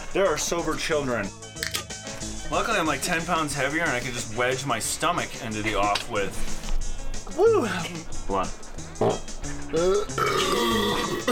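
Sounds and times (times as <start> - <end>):
speech: 0.1 - 1.8, 2.5 - 6.6, 7.3 - 11.3
loud drawn-out burp from person drinking beer: 9.0 - 11.3.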